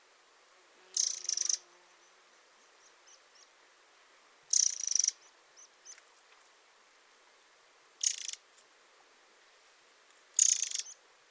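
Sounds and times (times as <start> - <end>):
Eurasian wren Troglodytes troglodytes harsh ticking rattles: 0.9 - 1.7, 4.5 - 6.1, 8.0 - 8.5, 10.3 - 11.0.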